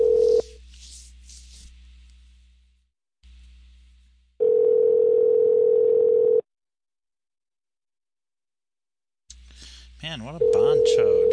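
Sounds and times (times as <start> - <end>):
telephone ringback tone over the line: 0.0 - 0.4, 4.4 - 6.4, 10.4 - 11.3
speech: 10.1 - 11.2.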